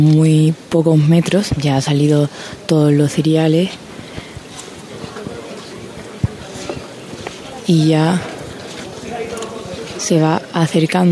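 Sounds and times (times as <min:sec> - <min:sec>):
speech: 0:00.0 - 0:03.9, 0:07.7 - 0:08.3, 0:10.0 - 0:11.0
faint crowd murmur: 0:00.0 - 0:11.0
bearers' feet shuffling on a sanctuary floor beneath a float: 0:03.7 - 0:10.0.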